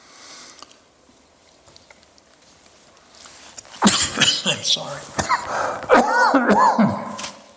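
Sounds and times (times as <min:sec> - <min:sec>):
preacher clearing a tickle from his throat: 0:03.8 - 0:07.3
speech: 0:04.5 - 0:07.0.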